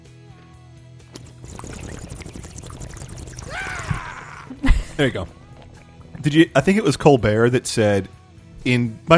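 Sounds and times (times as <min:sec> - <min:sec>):
person imitating the bubbling gurgle of a bong: 0:01.5 - 0:06.3
speech: 0:05.0 - 0:05.4, 0:06.2 - 0:09.1.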